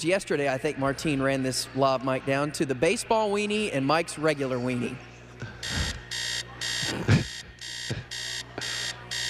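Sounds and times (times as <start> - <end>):
speech: 0.0 - 5.8
alarm clock ringing with harsh beeping bursts: 5.6 - 9.2.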